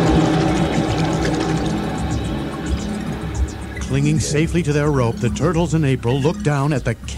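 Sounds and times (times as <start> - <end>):
water gushing through a roof: 0.0 - 3.8
speech: 3.9 - 7.1.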